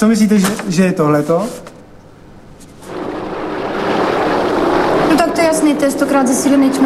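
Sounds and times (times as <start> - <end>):
speech: 0.0 - 1.7, 5.5 - 6.8
massive waterfall roaring: 2.9 - 6.8.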